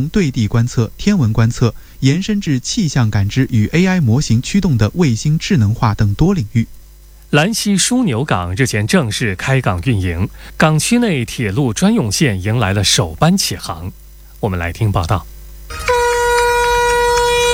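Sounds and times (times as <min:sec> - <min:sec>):
person speaking: 0:00.0 - 0:15.3
freight train horn blast as the train departs from a rail port: 0:15.7 - 0:17.5.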